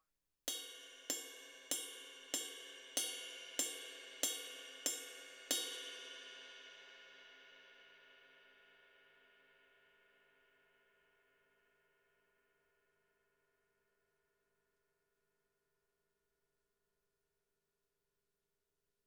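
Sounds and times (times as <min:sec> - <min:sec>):
crash cymbal: 0:00.5 - 0:10.5.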